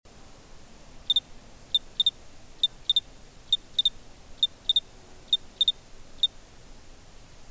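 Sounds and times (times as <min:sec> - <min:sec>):
cricket chirping at half speed: 0:01.1 - 0:06.4.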